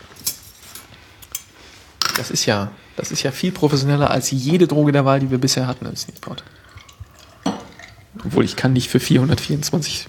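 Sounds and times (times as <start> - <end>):
speech: 2.2 - 6.6, 8.2 - 10.0
ice clinking against frosted glasses: 6.2 - 8.1.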